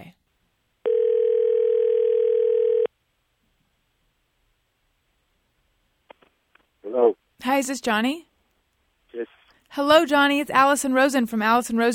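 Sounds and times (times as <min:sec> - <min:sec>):
electronic ringback tone on an outgoing phone call: 0:00.9 - 0:02.9
speech: 0:07.6 - 0:08.3, 0:09.7 - 0:11.9.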